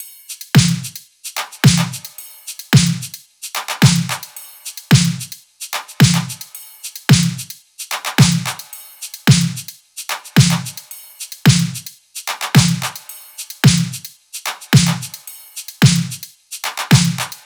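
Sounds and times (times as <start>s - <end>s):
drum top loop: 0.6s - 2.1s, 2.8s - 4.3s, 4.9s - 5.3s, 6.0s - 6.4s, 7.1s - 7.4s, 8.1s - 8.6s, 9.3s - 9.6s, 10.4s - 10.8s, 11.5s - 11.8s, 12.4s - 13.0s, 13.6s - 14.0s, 14.7s - 15.2s, 15.8s - 17.4s.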